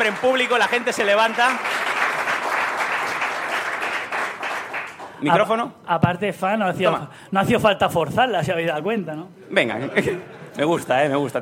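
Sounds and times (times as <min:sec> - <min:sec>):
speech: 0:00.0 - 0:01.8, 0:05.2 - 0:11.4
audience applause: 0:00.0 - 0:05.3
laughter: 0:09.6 - 0:11.0.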